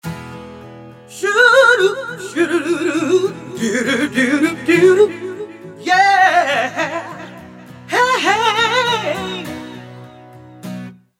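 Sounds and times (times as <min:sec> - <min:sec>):
voice through vocal effects processor with unison delay and reverb: 0:01.1 - 0:10.0.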